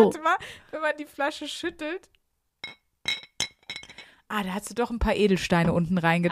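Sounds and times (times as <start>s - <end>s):
speech: 0.0s - 2.8s, 4.3s - 6.3s
two drinking glasses clinking together: 2.6s - 4.1s.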